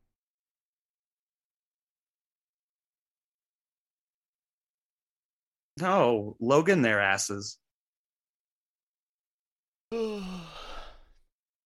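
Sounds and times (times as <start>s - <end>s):
speech: 5.8s - 7.6s, 9.9s - 10.7s
person yawning: 9.9s - 11.0s.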